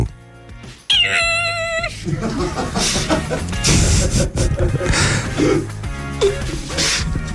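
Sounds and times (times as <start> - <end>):
cat meowing: 0.9 - 2.0
laughter: 1.8 - 7.0
speech: 2.0 - 6.4.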